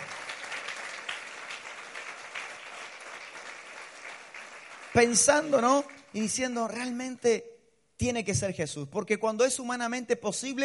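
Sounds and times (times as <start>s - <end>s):
large crowd applauding: 0.0s - 6.2s
speech: 4.9s - 10.6s.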